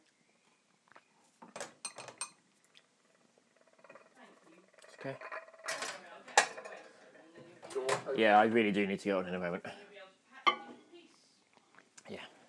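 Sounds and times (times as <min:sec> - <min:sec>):
cup clinking and knocking against hard surfaces: 0:01.6 - 0:02.4, 0:10.5 - 0:10.8
speech: 0:05.0 - 0:05.3, 0:07.8 - 0:09.8.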